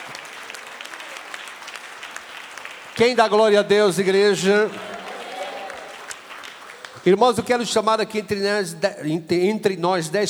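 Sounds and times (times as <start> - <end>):
church congregation clapping hands in praise: 0.0 - 8.5
speech: 3.0 - 5.0, 7.0 - 10.2
laughter: 3.0 - 7.7.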